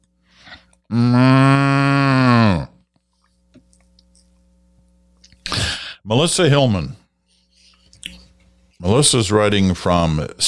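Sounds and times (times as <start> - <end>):
speech: 0.9 - 1.7, 6.1 - 7.0, 8.8 - 10.4
long loud cow moo: 0.9 - 2.7.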